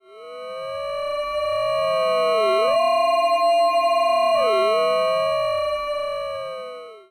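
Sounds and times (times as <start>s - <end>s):
sci-fi electronic alien scanner ascending: 1.8s - 6.4s.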